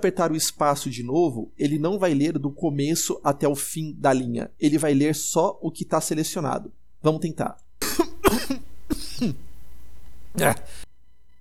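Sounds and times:
speech: 0.0s - 9.5s, 10.3s - 10.8s
hum: 0.0s - 11.3s
person coughing: 7.8s - 9.5s, 10.4s - 10.8s.

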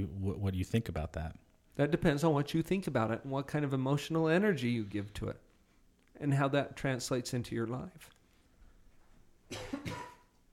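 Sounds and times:
speech: 0.0s - 5.5s, 6.2s - 8.2s, 9.5s - 10.0s
person coughing from a throat tickle: 9.5s - 10.3s.

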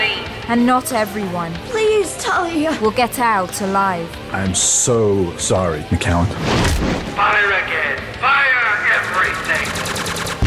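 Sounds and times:
speech: 0.0s - 10.0s
rapid rattling bursts of gunfire in an audio drama battle scene: 8.9s - 10.4s.

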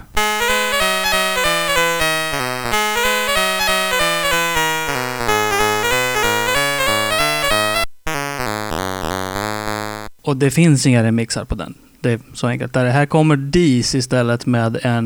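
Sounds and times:
bright buzzy 8-bit video game theme music: 0.0s - 10.1s
speech: 10.4s - 15.0s.

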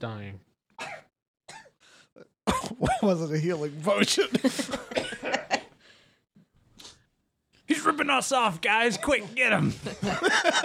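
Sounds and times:
speech: 0.0s - 0.5s, 2.2s - 5.4s, 7.8s - 10.6s
person coughing harsh raspy bursts: 0.8s - 3.2s, 4.2s - 5.7s
laughter: 3.9s - 5.8s, 9.0s - 10.6s.

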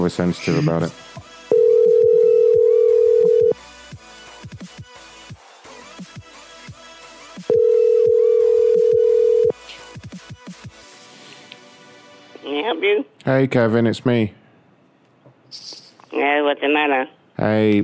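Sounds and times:
speech: 0.1s - 1.1s, 13.2s - 14.4s, 16.2s - 17.8s
telephone dial tone while dialing a call: 1.5s - 3.6s, 7.5s - 9.5s.

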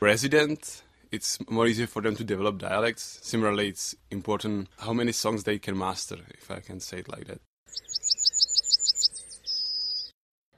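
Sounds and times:
speech: 0.1s - 8.0s
yellowhammer song: 7.7s - 10.1s.

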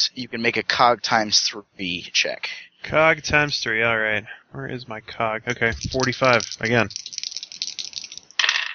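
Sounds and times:
speech: 0.1s - 7.1s
dice rattling and clattering across a table: 5.8s - 8.7s.

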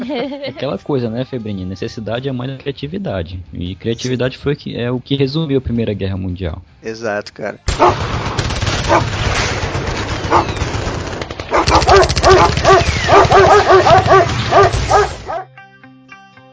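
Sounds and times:
laughter: 0.0s - 0.7s
speech: 0.1s - 8.3s
dog barking: 7.8s - 8.0s, 8.9s - 9.1s, 10.3s - 10.6s, 11.5s - 15.5s.

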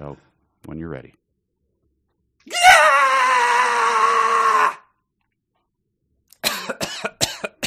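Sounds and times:
speech: 0.0s - 1.2s
loud sustained human scream: 2.5s - 4.9s.

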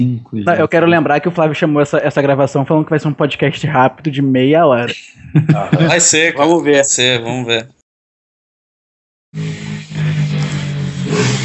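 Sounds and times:
speech: 0.0s - 7.8s, 9.3s - 9.6s
laughter: 5.2s - 6.6s
motorcycle engine revving outside: 9.4s - 11.4s.

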